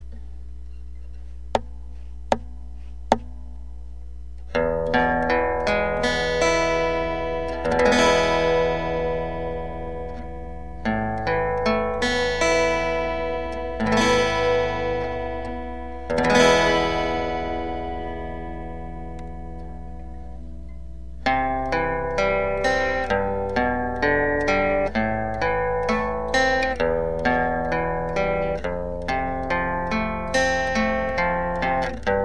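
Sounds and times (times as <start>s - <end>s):
acoustic piezo pickup sound: 0.0s - 32.2s.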